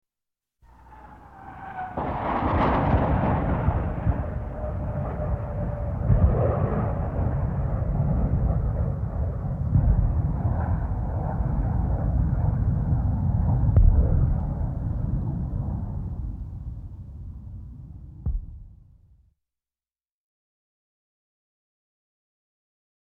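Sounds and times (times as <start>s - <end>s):
Starfighter firing Sidewinder missiles: 0.8s - 17.0s, 18.3s - 19.0s
target missile destroyed by Sidewinder missiles: 1.9s - 5.0s, 13.5s - 16.6s, 18.3s - 18.9s.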